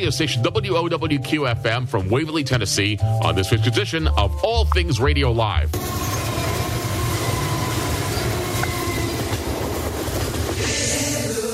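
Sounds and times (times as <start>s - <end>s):
speech: 0.0s - 6.2s
loud train rumbling past: 5.7s - 11.4s
rising metallic whine: 5.8s - 10.7s
rhythmic clickety-clack of train wheels on rails: 5.8s - 11.3s.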